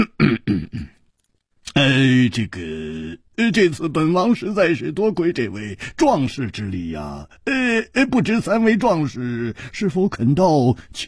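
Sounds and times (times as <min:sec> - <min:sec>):
man coughing heavily: 0:00.0 - 0:01.0
speech: 0:01.8 - 0:11.0.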